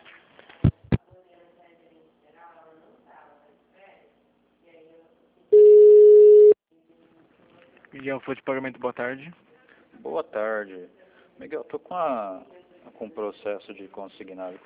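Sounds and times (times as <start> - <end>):
telephone tone while a call is being transferred: 5.5 - 6.6
speech: 8.0 - 14.6.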